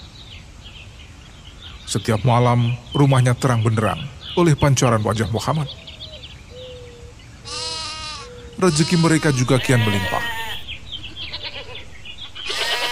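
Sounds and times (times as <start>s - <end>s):
speech: 1.9s - 5.8s, 8.6s - 10.4s
goats bleating: 7.4s - 12.9s.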